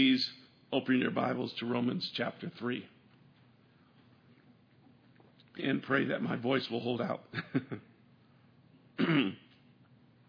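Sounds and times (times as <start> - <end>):
speech: 0.0 - 3.0, 5.6 - 7.9, 9.0 - 9.4
church congregation member clearing throat during a sermon: 9.0 - 9.6.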